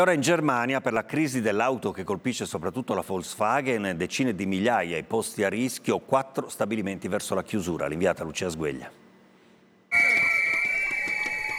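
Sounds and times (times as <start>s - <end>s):
speech: 0.0s - 9.0s
shrill whistles blown by car factory workers protesting job cuts outside a car plant in Wolfsburg: 9.9s - 11.5s.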